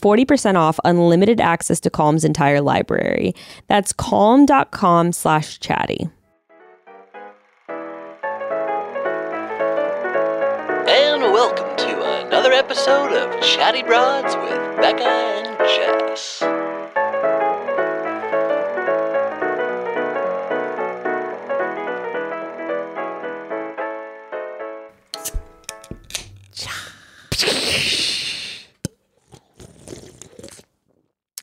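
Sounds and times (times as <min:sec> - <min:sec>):
speech: 0:00.0 - 0:06.2, 0:12.6 - 0:16.6
short musical jingle: 0:06.4 - 0:24.6
can of ice-cold beer cracking open: 0:25.1 - 0:26.6
faint slurping as beer is sipped: 0:28.8 - 0:30.8.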